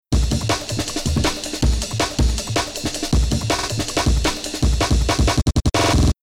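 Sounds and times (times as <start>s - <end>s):
chopped drum and bass rhythm loop: 0.1s - 6.2s.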